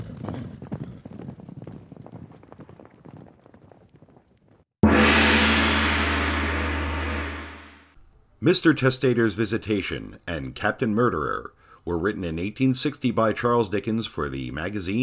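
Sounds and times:
milk-white horses galloping: 0.0 - 4.6
loud sustained roar: 4.8 - 7.8
speech: 8.4 - 15.0.

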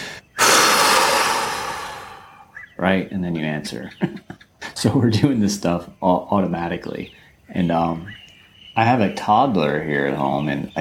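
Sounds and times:
long exhale demonstrated as a reaction to bad news: 0.0 - 2.5
speech: 2.8 - 8.2, 8.8 - 10.8.

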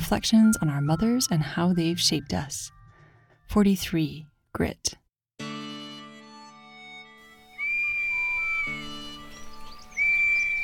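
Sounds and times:
speech: 0.1 - 2.8, 3.5 - 5.0
shrill police whistle blasts: 7.5 - 9.2.

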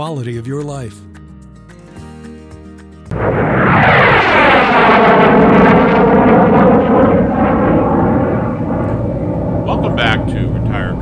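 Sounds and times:
speech: 0.0 - 1.2
jet fighter engine roaring overhead: 3.1 - 11.0.

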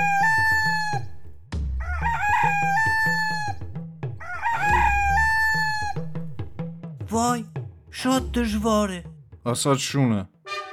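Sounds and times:
rooster crowing: 0.0 - 1.1, 1.8 - 3.6, 4.2 - 6.1
speech: 8.0 - 10.4.

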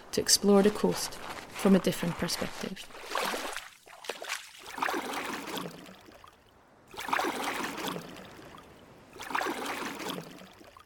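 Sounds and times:
speech: 0.1 - 3.4
kayak paddle splashing through sea water along a rocky coast: 2.0 - 10.8
sea water trickling: 2.3 - 10.8.

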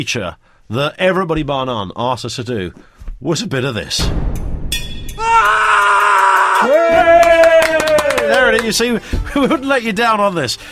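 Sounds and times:
speech: 0.0 - 4.5, 6.6 - 7.3, 8.3 - 10.7
loud piercing scream: 5.2 - 8.3.

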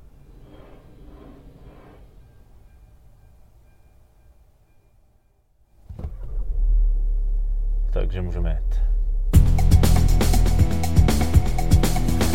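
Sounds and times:
train sweeping past: 0.0 - 5.4
steady low rumble: 6.1 - 12.2
speech: 8.1 - 9.0.

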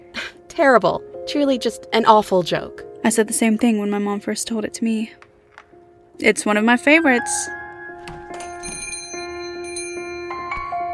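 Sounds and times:
speech: 0.6 - 5.2, 6.2 - 7.6
small shop-door bells jingling: 8.3 - 10.9.

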